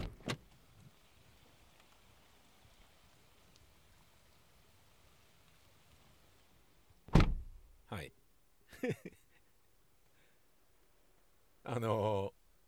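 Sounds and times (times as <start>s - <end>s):
wind: 0.0s - 12.6s
heavy rain: 0.4s - 6.9s
car door clicking open: 7.1s - 7.5s
loud car door thunk: 7.1s - 7.6s
laughter: 8.7s - 9.4s
speech: 8.8s - 9.2s, 11.7s - 12.4s.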